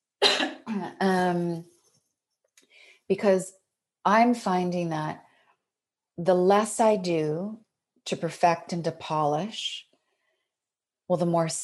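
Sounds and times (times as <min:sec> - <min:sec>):
person coughing: 0:00.2 - 0:00.8
speech: 0:00.8 - 0:01.7, 0:03.1 - 0:05.2, 0:06.2 - 0:09.9, 0:11.1 - 0:11.6.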